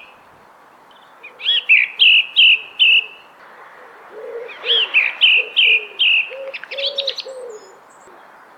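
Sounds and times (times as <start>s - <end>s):
thrush singing: 1.5s - 8.2s.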